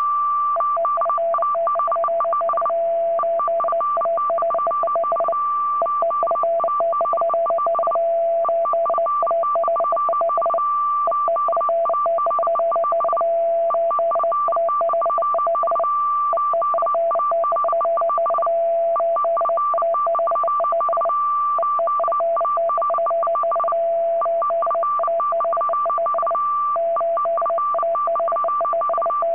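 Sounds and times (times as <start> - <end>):
diplomatic 25-baud FSK data signal sequence: 0.0 - 29.3.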